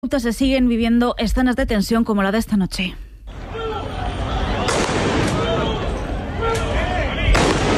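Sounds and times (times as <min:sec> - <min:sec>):
speech: 0:00.1 - 0:03.0
noisy crowd hubbub of voices: 0:03.3 - 0:07.7
police firing rubber bullets from rubber bullet launchers: 0:04.6 - 0:05.7, 0:07.3 - 0:07.7.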